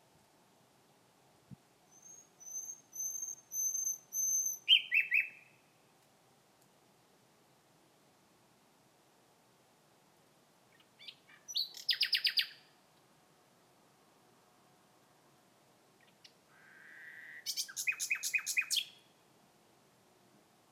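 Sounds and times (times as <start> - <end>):
common nightingale song: 1.5 - 6.0, 10.6 - 13.0, 15.9 - 19.3.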